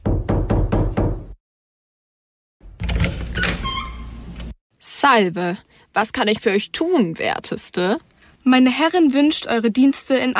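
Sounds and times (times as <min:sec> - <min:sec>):
knocking on a door: 0:00.0 - 0:01.4
speech: 0:05.0 - 0:10.3.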